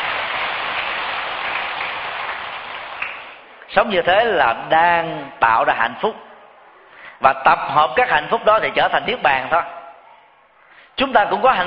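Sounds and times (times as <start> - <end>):
audience applause: 0.0 - 3.5
speech: 3.7 - 6.3, 7.2 - 9.8, 11.0 - 11.6.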